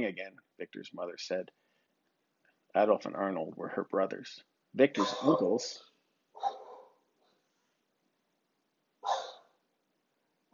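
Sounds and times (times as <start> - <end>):
speech: 0.0 - 1.6, 2.8 - 6.6
dog barking: 6.4 - 7.0, 9.0 - 9.5.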